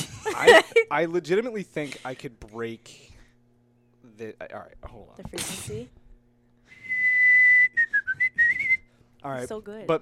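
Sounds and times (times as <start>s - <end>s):
laughter: 0.0s - 0.9s
speech: 0.4s - 3.1s, 4.2s - 6.0s, 9.2s - 9.9s
person whistling loudly: 6.7s - 9.0s.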